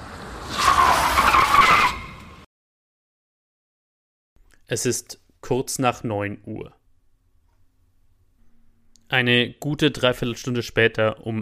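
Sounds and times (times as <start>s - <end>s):
road noise: 0.0s - 2.5s
tires of two cars screeching in emergency stop: 0.0s - 2.5s
speech: 4.7s - 6.8s, 9.1s - 11.4s.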